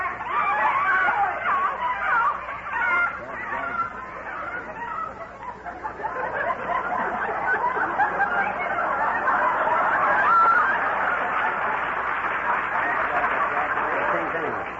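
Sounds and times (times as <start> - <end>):
crowd of chickens clucking and squawking: 0.0 - 11.6
laughter: 0.0 - 14.7.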